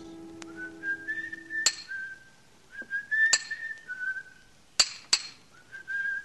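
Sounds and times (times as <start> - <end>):
person whistling a cheerful tune: 0.4 - 4.4, 5.6 - 6.2.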